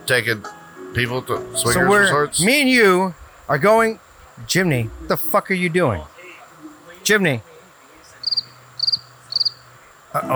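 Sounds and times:
faint low hum: 0.0 - 10.3
speech: 0.1 - 6.1, 7.0 - 7.5, 10.1 - 10.3
cricket chirping: 1.6 - 5.5, 6.1 - 10.3.

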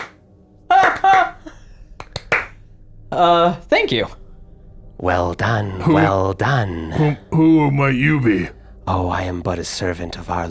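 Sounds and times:
slow clapping: 0.0 - 2.6
speech: 3.2 - 4.2, 5.0 - 10.4.

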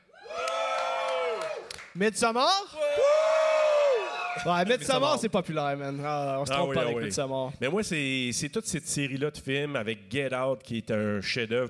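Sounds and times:
live audience shouting and cheering: 0.1 - 1.7, 2.8 - 5.2
people whooping: 0.1 - 1.7, 2.8 - 4.6
speech: 2.0 - 3.1, 4.4 - 11.6.

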